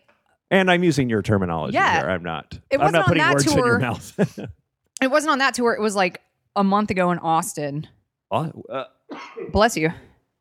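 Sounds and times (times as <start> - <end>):
speech: 0.5 - 10.1
person sneezing: 9.1 - 9.6.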